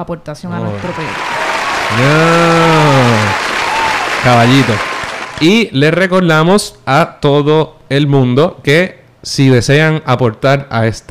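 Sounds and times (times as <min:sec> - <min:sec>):
speech: 0:00.0 - 0:03.0, 0:04.2 - 0:11.0
crowd applause sound effect: 0:00.6 - 0:05.6
rising-and-falling voiced ohh: 0:01.8 - 0:04.8.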